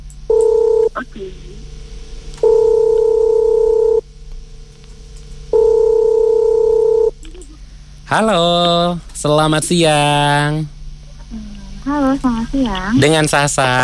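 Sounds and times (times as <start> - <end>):
faint hum: 0.0 - 13.8
telephone electronic tone bursts while placing a call: 0.3 - 1.0, 2.4 - 4.0, 5.5 - 7.2
speech: 1.2 - 1.8, 8.1 - 13.8.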